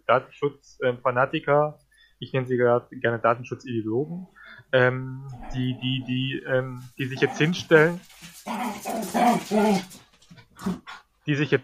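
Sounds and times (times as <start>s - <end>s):
speech: 0.1s - 10.0s, 10.6s - 11.6s
two dogs squabbling, growling and yelping: 5.2s - 6.0s, 7.2s - 11.2s.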